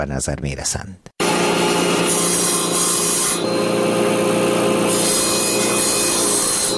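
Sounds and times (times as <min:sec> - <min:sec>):
speech: 0:00.0 - 0:02.2, 0:03.4 - 0:03.9
woodworking saw and plane rasping on wood: 0:01.5 - 0:03.4, 0:04.8 - 0:06.7.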